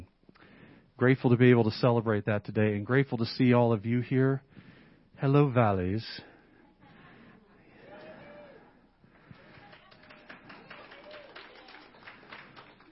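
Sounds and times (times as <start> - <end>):
speech: 1.0 - 6.3
whoops: 7.8 - 8.8, 9.4 - 11.9
crowd at a worship service cheering: 7.8 - 12.9
crowd at a worship service clapping: 9.2 - 12.9.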